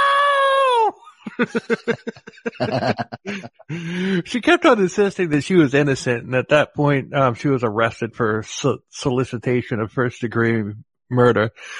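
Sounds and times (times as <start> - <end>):
woman wailing on a TV show recording: 0.0 - 3.5
woman sobbing on a TV show recording: 0.5 - 4.2
laughter: 0.9 - 7.6
speech: 1.4 - 11.7.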